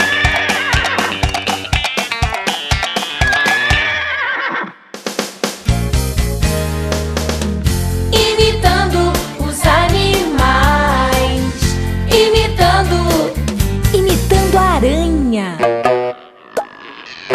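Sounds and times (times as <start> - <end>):
horse neighing: 0.0 - 1.4, 3.2 - 4.8, 16.1 - 17.3
upbeat bouncy backing track with steady drum hits: 0.0 - 4.0, 4.9 - 15.0.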